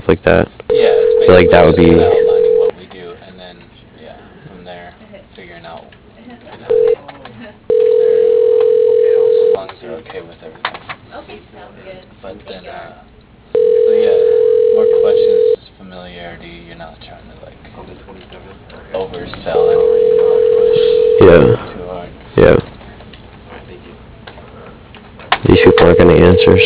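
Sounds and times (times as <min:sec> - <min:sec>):
speech: 0:00.1 - 0:02.2, 0:26.4 - 0:26.6
ringback tone of an outgoing phone call: 0:00.7 - 0:02.7, 0:06.7 - 0:07.0, 0:07.7 - 0:09.6, 0:13.6 - 0:15.6, 0:19.5 - 0:21.6, 0:25.5 - 0:26.6.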